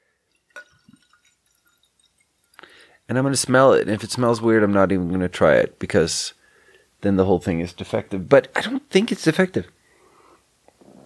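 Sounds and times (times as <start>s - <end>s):
liquid dripping and trickling: 0.0s - 3.1s
drink poured from can splashing into glass: 0.2s - 2.9s
speech: 3.1s - 6.4s, 7.0s - 9.8s.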